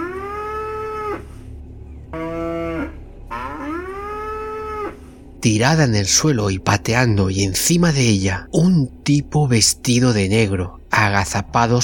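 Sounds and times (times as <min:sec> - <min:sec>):
cow lying on the ground and kicking mooing: 0:00.0 - 0:01.4, 0:02.1 - 0:05.1
faint rumble: 0:00.0 - 0:11.8
speech: 0:05.4 - 0:11.8.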